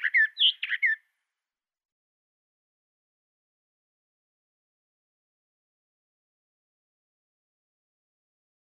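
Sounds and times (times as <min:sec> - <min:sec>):
Western Orphean Warbler song phrase of slurred whistled notes: 0:00.0 - 0:01.0.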